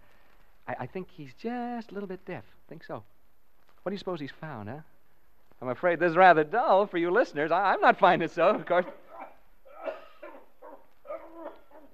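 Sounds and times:
speech: 0.7 - 3.2, 3.8 - 4.9, 5.6 - 9.0
man coughing: 8.7 - 10.5.

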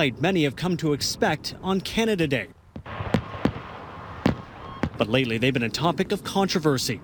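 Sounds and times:
speech: 0.0 - 2.6, 5.0 - 7.0
moderately firework bangs: 2.8 - 5.5.

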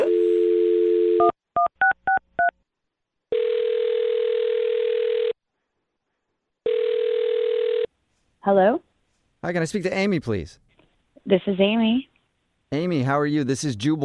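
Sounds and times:
long telephone ringback tones: 0.0 - 1.3, 3.3 - 5.4, 6.7 - 7.9
steady telephone dial tone: 3.3 - 5.4, 6.7 - 7.9
speech: 8.4 - 10.6, 11.2 - 12.1, 12.7 - 14.0.

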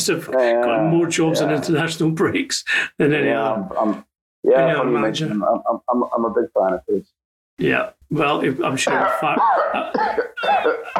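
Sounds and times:
speech: 0.0 - 10.9
person coughing: 8.8 - 10.9.

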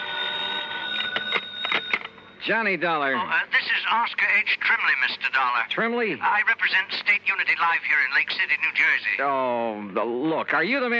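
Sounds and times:
old-fashioned telephone beside a bed ringing: 0.0 - 2.5
speech: 2.4 - 10.9.

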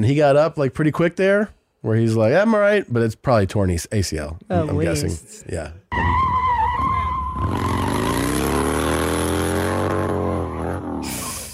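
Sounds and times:
speech: 0.0 - 6.4
motorcycle skidding as rider crashes: 5.9 - 11.5
motorcycle engine roaring: 6.0 - 11.3.

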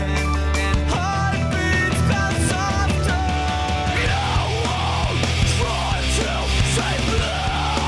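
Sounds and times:
heavy bass: 0.0 - 7.8
loud dense rock music: 0.0 - 7.8
pounding drums: 1.7 - 7.8
harsh screamed vocal: 3.9 - 7.8.

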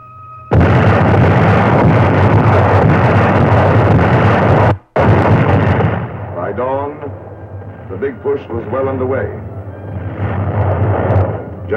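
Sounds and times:
Allied artillery guns opening fire at night along the Italian front: 0.5 - 7.2, 10.0 - 11.7
speech: 8.0 - 9.5.

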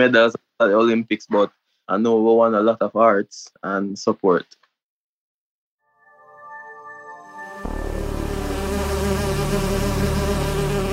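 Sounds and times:
speech: 0.0 - 4.6
Asian giant hornet buzzing: 7.6 - 10.9.

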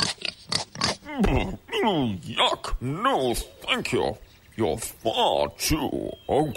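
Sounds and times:
pig squealing oink: 0.0 - 1.6
pig snorting and grunting: 0.0 - 2.0
speech: 1.1 - 6.5.

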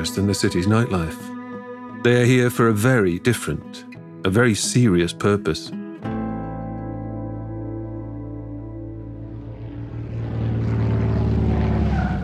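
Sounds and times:
speech: 0.0 - 1.4, 2.0 - 5.8
propeller airplane engine droning as plane lands: 8.4 - 12.2.

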